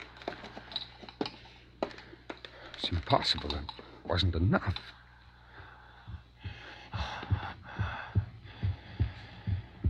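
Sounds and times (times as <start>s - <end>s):
creature's ragged gasping breaths: 0.0s - 4.1s, 4.8s - 9.8s
speech: 2.8s - 5.0s
thumping heartbeat: 5.6s - 9.8s.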